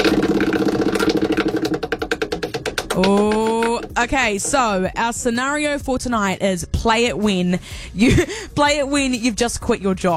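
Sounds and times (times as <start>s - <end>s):
spinning prize wheel clicking: 0.0s - 4.8s
steady tonal musical background: 0.0s - 10.1s
speech: 3.0s - 3.4s, 4.0s - 10.1s.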